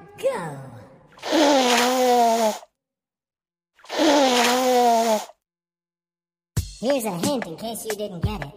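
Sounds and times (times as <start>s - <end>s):
person blowing their nose: 1.2s - 2.7s, 3.9s - 5.3s
speech: 6.8s - 8.5s.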